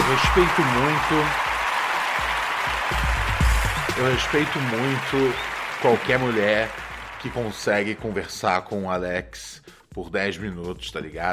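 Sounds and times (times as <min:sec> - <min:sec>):
applause from a small group: 0:00.0 - 0:08.5
speech: 0:00.1 - 0:01.5, 0:04.0 - 0:11.3.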